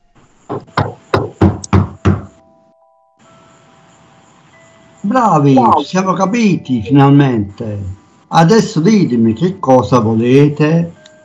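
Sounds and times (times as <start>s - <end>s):
faint steady humming tone: 0.0s - 11.2s
firm knocking on a wooden door: 0.5s - 2.4s
speech: 5.1s - 11.0s.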